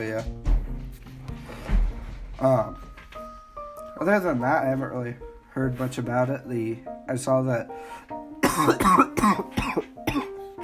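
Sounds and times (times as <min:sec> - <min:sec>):
speech: 0:00.0 - 0:00.5, 0:02.4 - 0:02.8, 0:04.0 - 0:09.9
person coughing harshly: 0:08.4 - 0:10.4.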